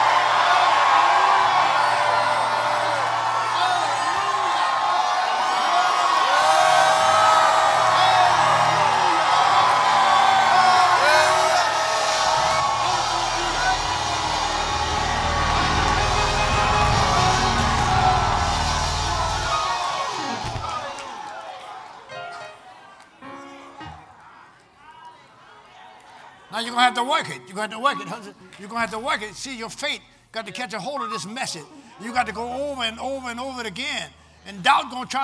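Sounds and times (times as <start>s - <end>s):
large audience screaming and whooping: 0.0s - 22.0s
speech: 26.9s - 35.2s.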